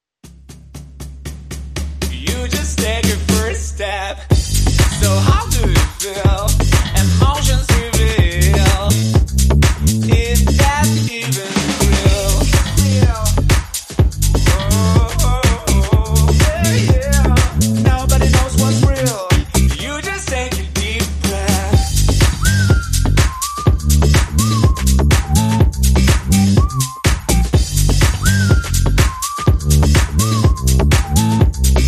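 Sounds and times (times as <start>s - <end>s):
bass: 0.2s - 31.8s
drums: 0.2s - 31.8s
vocals: 2.0s - 23.1s.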